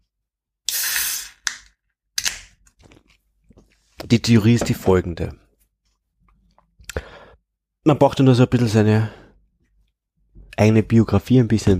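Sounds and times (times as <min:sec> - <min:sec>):
non-alcoholic beer bottle opening hiss: 0:00.7 - 0:01.6
speech: 0:04.1 - 0:05.4, 0:07.9 - 0:09.2, 0:10.6 - 0:11.7.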